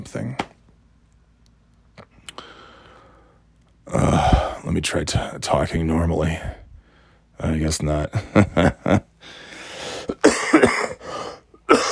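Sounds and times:
speech: 0.0 - 0.5, 3.9 - 6.6, 7.4 - 9.4
person with a sore throat coughing harshly: 9.9 - 11.9.

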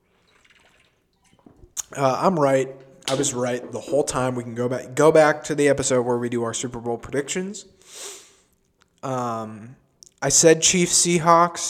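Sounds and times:
sipping water: 0.0 - 4.6
gulp-like swallow: 0.1 - 2.0
speech: 1.9 - 8.2, 9.0 - 11.6.

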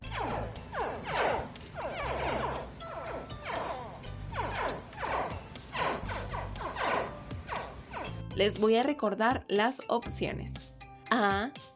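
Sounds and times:
baby crocodile hatchlings calling with chirping grunts: 0.0 - 8.2
speech: 8.4 - 11.7.

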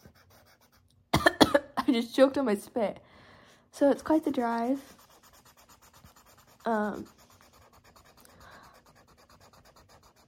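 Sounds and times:
marker scratching on paper: 0.0 - 0.9, 4.2 - 10.2
speech: 1.9 - 3.1, 3.8 - 5.0, 6.6 - 7.2.

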